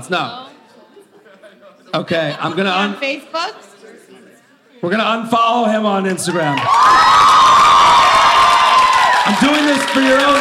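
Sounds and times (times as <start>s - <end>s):
speech: 0.0s - 0.4s, 1.9s - 3.7s, 4.8s - 7.6s, 9.3s - 10.3s
audience cheering with high-pitched whoops and shouts: 6.5s - 10.3s.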